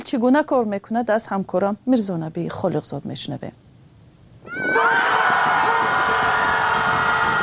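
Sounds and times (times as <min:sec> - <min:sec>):
speech: 0:00.1 - 0:03.7
group of people screaming together on the lakeshore in downtown Chicago: 0:04.4 - 0:07.4.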